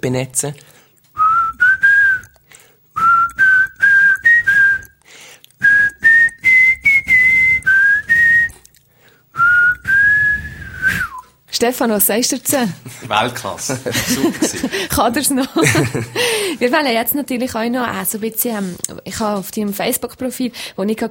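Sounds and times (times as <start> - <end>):
speech: 0.0 - 0.8, 11.6 - 21.1
person whistling a song intro melody: 1.2 - 2.4, 3.0 - 5.0, 5.6 - 8.6, 9.4 - 11.3
laughter: 12.8 - 16.6.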